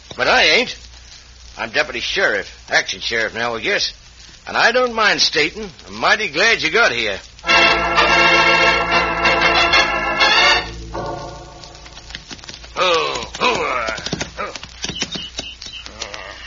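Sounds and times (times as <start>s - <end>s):
speech: 0.2s - 0.8s, 1.6s - 7.9s
loud sustained tonal sound: 7.4s - 12.3s
fast horse hooves clip-clopping: 11.1s - 16.3s.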